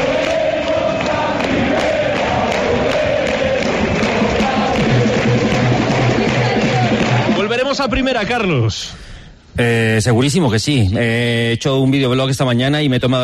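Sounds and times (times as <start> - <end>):
football crowd cheering in a stadium: 0.0 - 7.8
speech: 7.8 - 9.0, 9.6 - 13.2.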